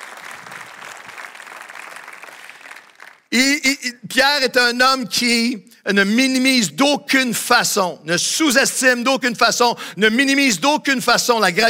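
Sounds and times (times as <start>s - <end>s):
audience applauding: 0.0s - 3.3s
speech: 3.3s - 11.6s.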